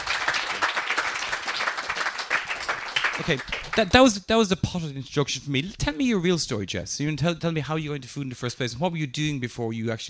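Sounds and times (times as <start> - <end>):
warm audience applause welcoming two guests: 0.0 - 3.9
speech: 3.2 - 10.0.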